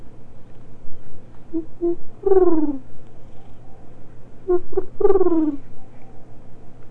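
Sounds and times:
low steady hum: 0.0s - 6.8s
bird calling outside: 0.9s - 6.8s.

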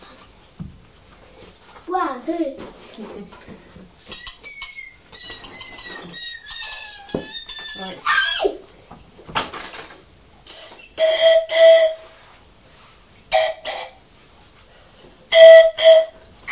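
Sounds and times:
speech: 2.0s - 3.6s
whistle blown in short loud breathy blasts: 10.8s - 12.2s, 13.3s - 14.0s, 15.3s - 16.5s.

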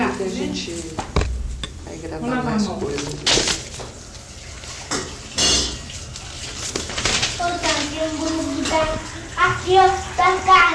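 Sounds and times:
speech: 0.2s - 1.2s, 2.0s - 3.6s, 8.8s - 10.7s
water running and falling with splashing hiss: 2.5s - 10.7s.

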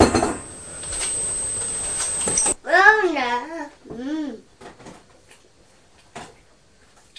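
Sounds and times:
glass bottle of orange juice clinking and clattering: 0.0s - 0.5s
faint high whine: 0.0s - 2.6s
steady low hum: 0.0s - 5.0s.

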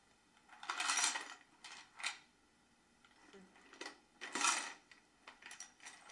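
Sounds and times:
plastic mechanism of a toy garbage truck being pressed: 0.5s - 2.2s, 3.6s - 6.1s.

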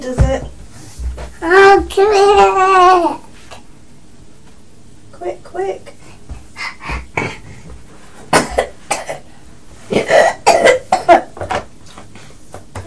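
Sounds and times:
speech: 0.0s - 0.6s, 1.4s - 3.2s, 5.2s - 6.0s
child coughing: 7.0s - 7.4s, 8.3s - 9.3s, 9.9s - 11.4s.

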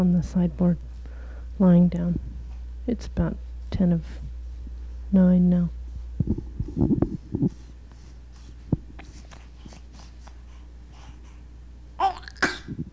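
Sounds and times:
speech: 0.0s - 0.9s, 1.6s - 4.3s, 5.1s - 7.6s
sneeze: 12.3s - 12.8s.

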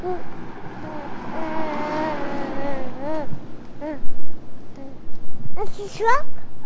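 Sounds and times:
truck rumbling past: 0.0s - 5.1s
people talking: 5.6s - 6.6s.

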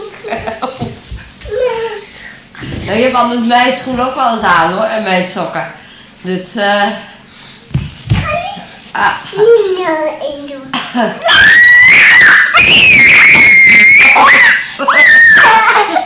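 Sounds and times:
speech: 2.9s - 7.1s, 9.0s - 16.0s
child screaming in high-pitched shrieks: 11.2s - 15.7s.

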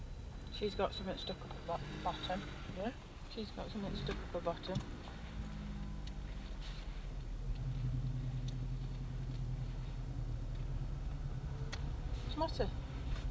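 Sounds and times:
car engine rumbling: 0.0s - 13.2s
speech: 0.6s - 5.0s, 12.4s - 12.8s.

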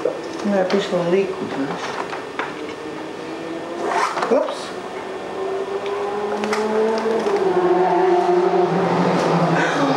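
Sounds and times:
speech: 0.4s - 2.1s, 4.3s - 4.8s
motorcycle engine roaring while speeding past: 2.2s - 9.9s.

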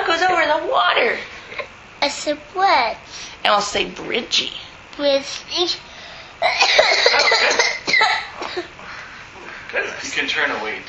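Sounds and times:
speech: 0.2s - 8.7s, 9.7s - 10.8s
big cough into a covered mouth: 6.4s - 8.7s.

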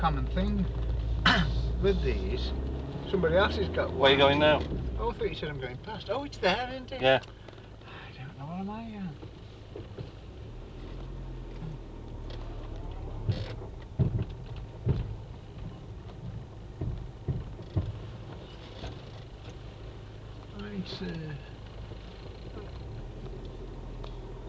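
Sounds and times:
speech: 0.0s - 7.4s, 8.4s - 10.2s, 20.9s - 21.5s
car engine rumble while reversing: 0.0s - 24.4s
knocking from under car while reversing: 13.2s - 19.2s.

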